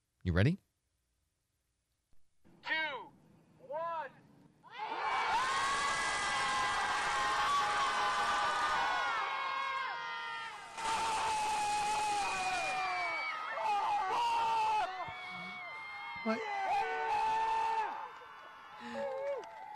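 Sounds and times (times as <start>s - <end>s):
speech: 0.2s - 0.6s
crowd screaming together outdoors at a lake: 4.7s - 19.7s
shrieks and whoops: 4.7s - 19.7s.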